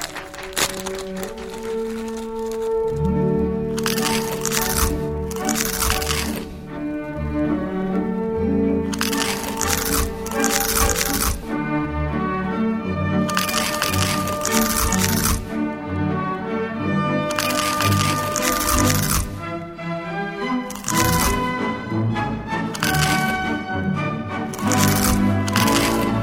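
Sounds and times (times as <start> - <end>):
crunching kettle corn popcorn snack: 0.0 - 8.0, 8.8 - 11.9, 13.1 - 16.1, 17.2 - 19.6, 20.6 - 21.7, 22.7 - 23.6, 24.5 - 26.2
steady tonal music: 0.0 - 26.2.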